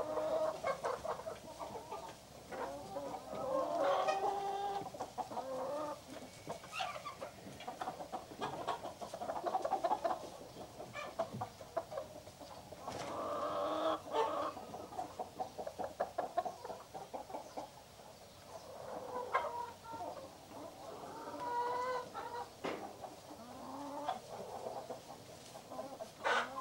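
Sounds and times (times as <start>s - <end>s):
chickens clucking and cackling in a hen house: 0.0s - 26.5s.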